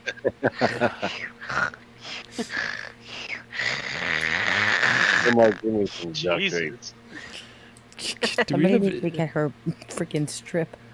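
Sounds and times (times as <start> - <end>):
laughter: 0.0 - 1.7, 5.0 - 7.4
speech: 0.2 - 3.0, 5.2 - 7.0, 8.1 - 10.8
voice imitating loud snoring: 0.7 - 6.5.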